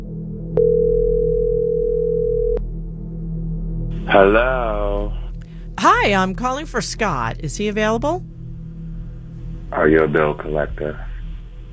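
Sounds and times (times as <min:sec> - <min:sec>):
faint low hum: 0:00.0 - 0:11.7
telephone dial tone: 0:00.6 - 0:02.6
speech: 0:04.1 - 0:05.2, 0:05.8 - 0:08.3, 0:09.7 - 0:11.1.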